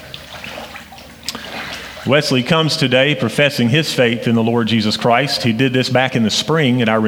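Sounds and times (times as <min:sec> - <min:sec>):
water sloshing and splashing in a baptismal pool as someone steps in: 0:00.0 - 0:02.6
speech: 0:02.0 - 0:07.0.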